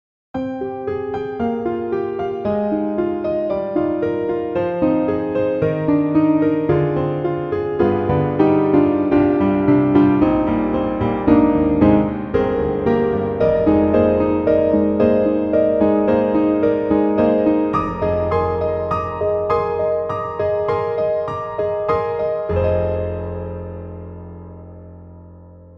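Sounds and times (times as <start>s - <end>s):
soft grand piano: 0.4s - 25.7s.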